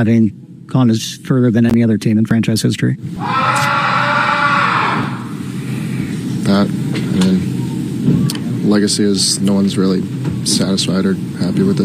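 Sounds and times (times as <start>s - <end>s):
speech: 0.0s - 3.7s, 6.5s - 7.5s, 8.7s - 11.8s
noisy rumbling baseball clubhouse: 3.1s - 6.9s
person shrieking in a baseball clubhouse: 3.2s - 5.7s
crowd-like commotion: 3.2s - 6.1s.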